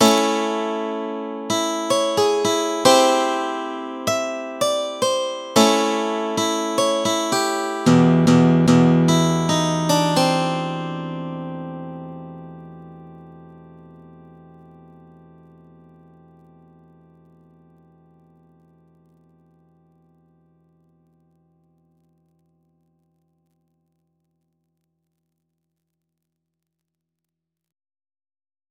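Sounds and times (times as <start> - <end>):
guitar playing an intro: 0.0 - 18.1.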